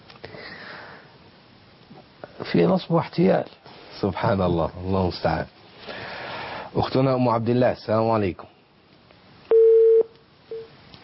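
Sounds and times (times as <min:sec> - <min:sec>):
speech: 0:02.4 - 0:05.6, 0:06.8 - 0:08.6
telephone disconnect tone on a call-in line: 0:09.5 - 0:10.7.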